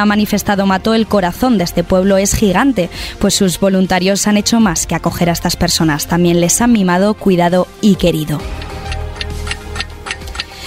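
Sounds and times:
speech: 0.0 - 8.6
clock ticking: 8.3 - 10.6.

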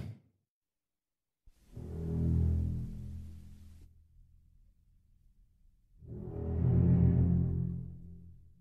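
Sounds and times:
ominous theme music with deep menacing strings: 1.7 - 5.0, 5.8 - 8.6.

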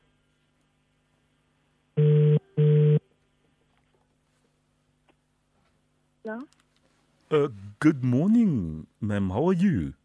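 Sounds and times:
ringing tone of a telephone call being dialled: 2.0 - 3.0
speech: 7.3 - 10.0.

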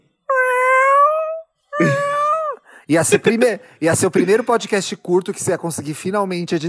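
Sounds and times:
person imitating cat meows: 0.3 - 2.6
speech: 1.8 - 2.0, 2.9 - 6.6.

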